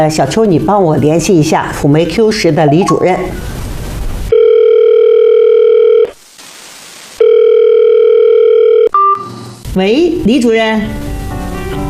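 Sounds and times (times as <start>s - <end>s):
speech: 0.0s - 3.6s, 9.8s - 11.1s
telephone ringback tone while placing a call: 4.3s - 6.2s, 7.2s - 9.2s.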